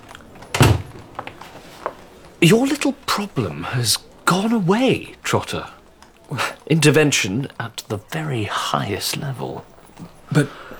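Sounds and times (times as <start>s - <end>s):
small rustles: 0.0s - 10.7s
door shutting with a solid thunk: 0.1s - 1.6s
speech: 2.4s - 10.6s.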